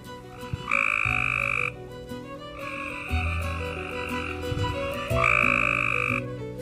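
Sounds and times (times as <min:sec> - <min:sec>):
male Cope's gray tree frogs calling for females: 0:00.0 - 0:01.8, 0:02.5 - 0:06.3
dense steady chorus of other frogs: 0:00.3 - 0:01.8, 0:02.6 - 0:04.5, 0:05.1 - 0:06.2.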